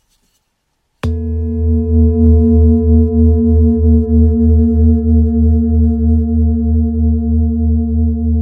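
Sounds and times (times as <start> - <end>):
singing bowl tuned to mi: 1.0 - 8.3.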